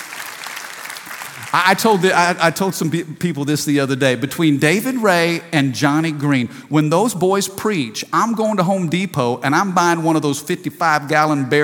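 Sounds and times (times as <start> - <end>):
audience clapping hands: 0.0 - 2.4
speech: 1.5 - 11.6.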